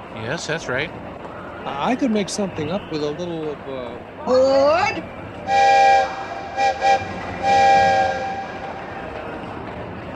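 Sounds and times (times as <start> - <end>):
speech: 0.2 - 8.3
low rumble of a passing train: 5.0 - 10.1
loud train horn blasts: 5.5 - 9.0.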